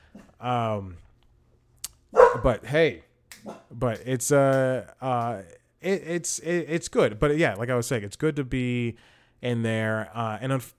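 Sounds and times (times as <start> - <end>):
speech: 0.4 - 1.0, 2.4 - 10.7
dog barking: 2.1 - 2.5, 3.4 - 3.8.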